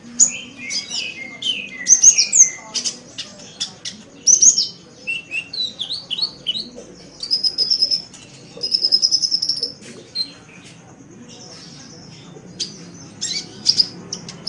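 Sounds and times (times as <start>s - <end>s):
Oriental magpie-robin singing: 0.0s - 14.4s.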